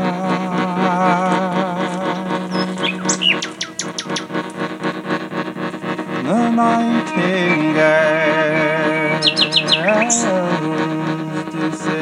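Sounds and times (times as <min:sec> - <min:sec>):
wavering droning tone: 0:00.0 - 0:12.0
birds chirping and whistling: 0:02.2 - 0:04.6, 0:06.6 - 0:10.4.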